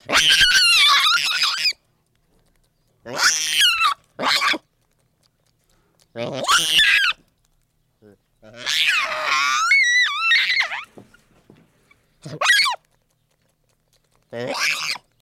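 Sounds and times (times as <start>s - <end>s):
baboon screaming and wailing: 0.0s - 1.8s, 3.1s - 4.6s, 6.2s - 7.2s, 8.4s - 10.9s, 12.3s - 12.8s, 14.3s - 15.1s.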